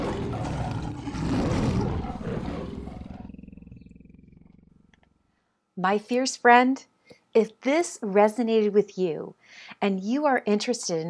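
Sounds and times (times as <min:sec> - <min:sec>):
lioness roaring: 0:00.0 - 0:05.0
speech: 0:05.8 - 0:11.0.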